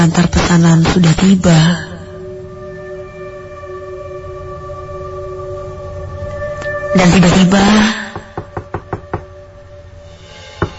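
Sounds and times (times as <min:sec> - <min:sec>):
speech: 0:00.0 - 0:01.9, 0:06.9 - 0:08.0
knocking on an apartment door: 0:08.2 - 0:09.3.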